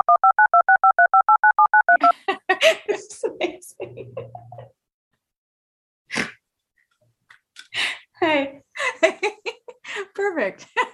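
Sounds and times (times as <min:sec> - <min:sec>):
telephone keypad tones while dialing a call: 0:00.0 - 0:02.0
speech: 0:08.2 - 0:09.5, 0:10.2 - 0:10.9.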